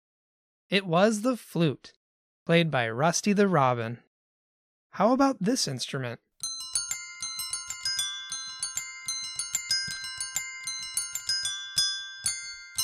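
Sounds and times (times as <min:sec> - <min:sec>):
speech: 0:00.7 - 0:04.0, 0:05.0 - 0:06.2
bells ringing a quick bright melody: 0:06.4 - 0:12.8.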